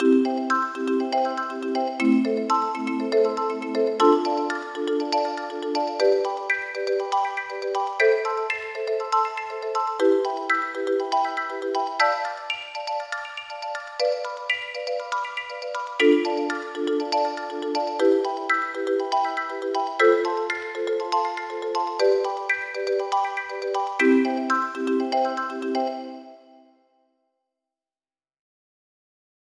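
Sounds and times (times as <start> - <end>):
arpeggiator tonal harmonizer rhythm pattern: 0.0 - 26.2.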